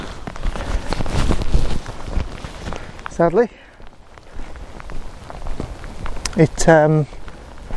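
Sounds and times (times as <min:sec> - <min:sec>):
light drizzle pattering: 0:00.0 - 0:07.7
person's voice: 0:03.1 - 0:03.7, 0:06.3 - 0:07.2
speech: 0:03.2 - 0:03.7, 0:06.4 - 0:07.2.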